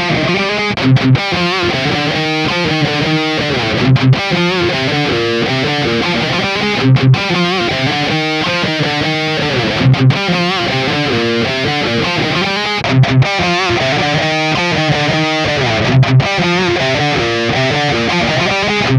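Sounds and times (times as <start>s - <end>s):
heavily distorted electric guitar riff reamped through a high-gain amp into a cabinet: 0.0s - 18.9s.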